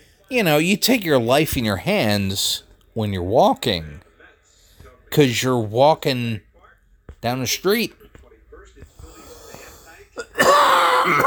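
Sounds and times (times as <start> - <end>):
speech: 0.3 - 4.1, 5.1 - 6.5, 7.2 - 8.0
single harsh rasping cough: 10.2 - 11.2.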